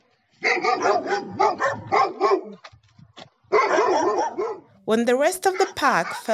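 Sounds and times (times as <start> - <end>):
dog barking: 0.4 - 2.6, 3.5 - 4.8, 5.5 - 6.3
speech: 4.9 - 6.3.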